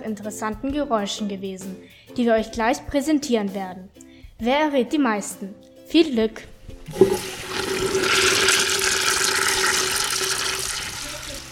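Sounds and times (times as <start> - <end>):
speech: 0.0 - 7.4
toilet flushing: 6.9 - 11.5.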